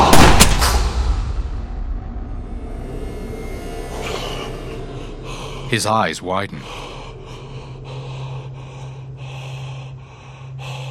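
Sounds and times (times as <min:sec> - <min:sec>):
gunshots fired at someone's back with a long rumbling tail: 0:00.0 - 0:02.2
speech: 0:05.7 - 0:06.9.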